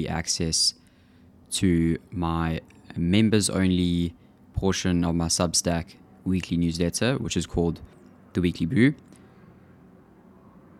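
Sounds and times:
speech: 0.0 - 0.8, 1.5 - 9.1
loud airplane flying overhead outside a window: 2.0 - 10.7.

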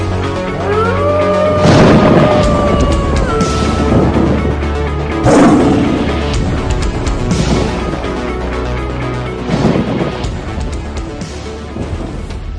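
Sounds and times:
low rumbling swells: 0.2 - 12.4
deep booming lion roar sound effect: 0.6 - 4.5, 5.2 - 6.3.

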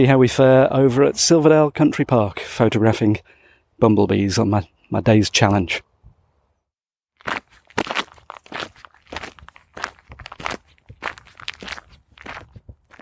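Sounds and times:
speech: 0.0 - 5.9
footsteps crunching on a gritty valley trail: 7.2 - 13.0.

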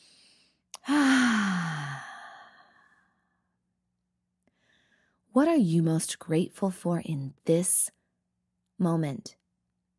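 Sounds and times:
deep breath let out as a long audible sigh during a mindfulness exercise: 0.8 - 3.0
speech: 5.4 - 8.0, 8.8 - 9.4.

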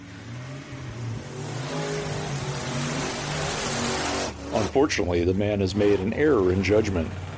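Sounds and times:
Jeep engine revving as it accelerates: 0.0 - 7.3
speech: 4.6 - 7.3.

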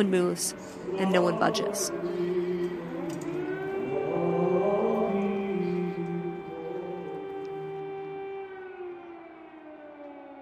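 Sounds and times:
speech: 0.0 - 2.3
air raid sirens wailing during a funeral service in Lviv Ukraine: 0.0 - 10.4.

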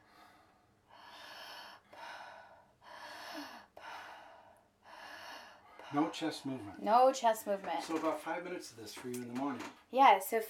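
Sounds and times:
slow deep belly breathing during a breathing exercise: 0.0 - 6.1
speech: 5.9 - 10.4.

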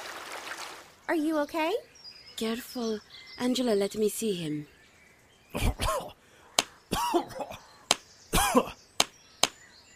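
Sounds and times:
speech: 1.1 - 4.8, 5.5 - 6.2
man coughing water out of his lungs after falling into water: 5.6 - 6.2, 6.9 - 7.6, 8.3 - 8.8.

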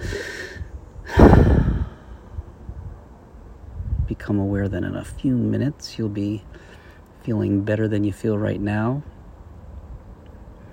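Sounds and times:
long deep breath: 0.0 - 2.4
speech: 4.2 - 9.2.

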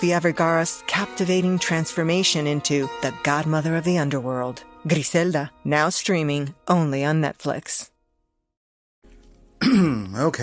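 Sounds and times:
speech: 0.0 - 7.9, 9.6 - 10.4
person coughing: 9.6 - 10.2
throat clearing: 9.6 - 10.3.

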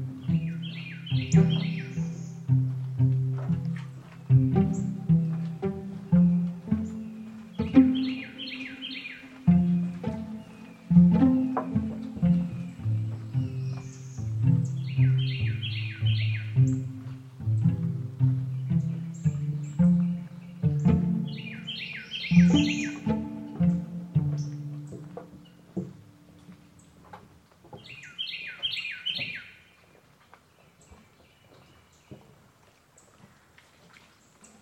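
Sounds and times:
low croaking chorus in a cypress swamp: 0.0 - 25.4
bird trilling in a cypress swamp: 0.2 - 2.5, 6.7 - 16.7, 19.1 - 24.5.

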